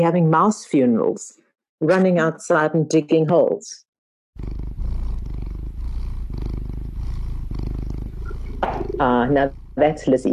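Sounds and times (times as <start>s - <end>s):
speech: 0.0s - 3.8s, 8.9s - 10.3s
domestic cat purring: 4.4s - 10.3s.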